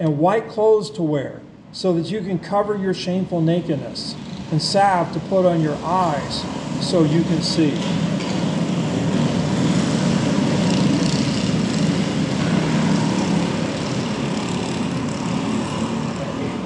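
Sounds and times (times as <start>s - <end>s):
speech: 0.0s - 8.1s
small lawnmower-engine scooters driving past: 4.0s - 16.6s.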